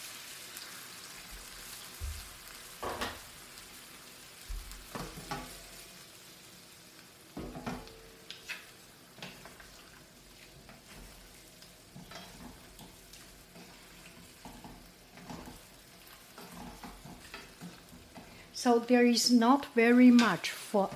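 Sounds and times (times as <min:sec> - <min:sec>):
hot pan sizzling with crackling bursts as hot water is poured in while cooking: 0:00.0 - 0:20.9
scrape of stirring in a pan: 0:08.3 - 0:18.5
speech: 0:18.6 - 0:20.9.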